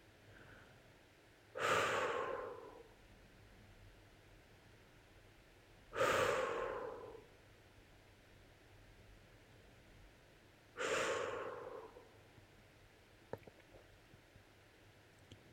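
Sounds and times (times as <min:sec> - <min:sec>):
slow exhale through softly pursed lips during a relaxation meditation: 0:01.6 - 0:03.0, 0:06.0 - 0:07.3, 0:10.8 - 0:12.2.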